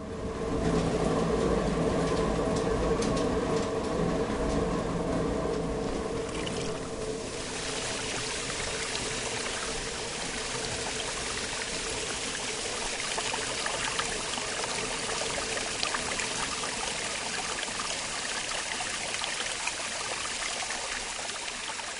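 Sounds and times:
faint mechanical hum: 0.0 - 21.9
rushing water flowing at a watermill: 6.0 - 21.9.

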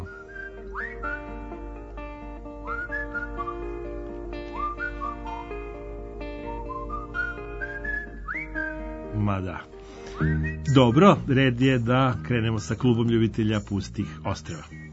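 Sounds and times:
person whistling a melodic tune: 0.0 - 1.5, 2.6 - 5.6, 6.4 - 8.8, 10.0 - 11.4
speech: 9.2 - 14.9.

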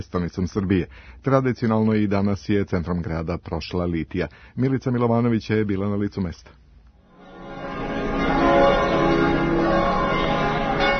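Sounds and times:
speech: 0.0 - 6.6
Orthodox church bells pealing in Belgrade Serbia for Spasovdan feast day: 7.1 - 10.9.

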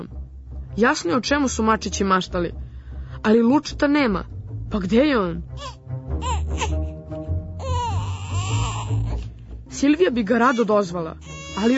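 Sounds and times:
speech: 0.8 - 2.6, 3.2 - 6.8, 9.8 - 11.7
baby sitting on the floor crying loudly: 5.6 - 6.8, 7.6 - 9.2, 10.4 - 11.7.

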